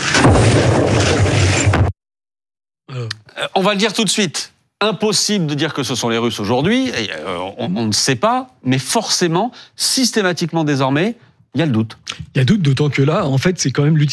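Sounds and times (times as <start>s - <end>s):
electrical explosions on high-voltage power lines near Cologne Germany caused by sabotage: 0.1s - 1.9s
speech: 3.6s - 14.1s.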